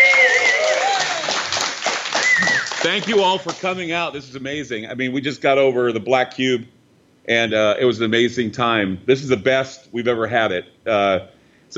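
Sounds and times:
audience cheering and whooping: 0.0 - 2.9
audience clapping: 0.0 - 3.8
speech: 2.8 - 11.7.

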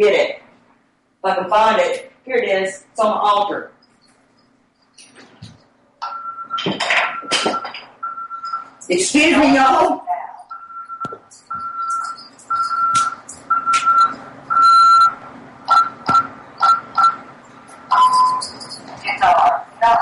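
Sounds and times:
speech: 0.0 - 0.4, 1.2 - 3.8, 8.9 - 10.2, 19.2 - 20.0
home security alarm beeping: 6.0 - 8.8, 10.5 - 20.0.

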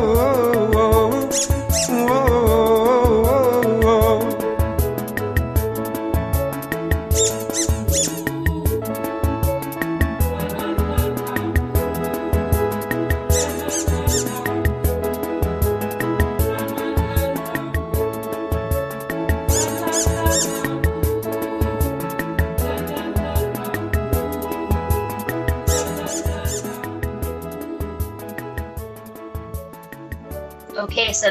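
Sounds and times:
upbeat musical track with steady beat: 0.0 - 31.2
squeaky toy squeaking: 1.3 - 2.0, 7.1 - 8.2, 13.3 - 14.4, 19.5 - 20.7, 25.7 - 26.7.

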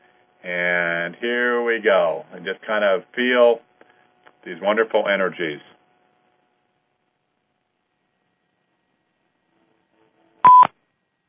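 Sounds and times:
speech: 0.4 - 3.7, 4.4 - 5.7
short electronic beep signalling a caller joining: 10.4 - 10.7.

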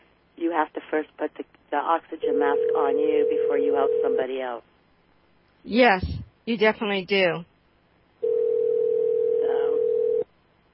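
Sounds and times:
speech: 0.6 - 4.7, 5.6 - 7.5
phone call ringing tone: 2.3 - 4.3, 8.2 - 10.3.

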